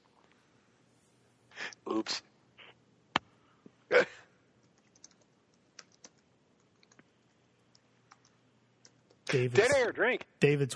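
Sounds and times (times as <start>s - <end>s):
speech: 2.0s - 2.3s, 9.3s - 10.7s
keystrokes on a computer keyboard: 4.6s - 9.3s.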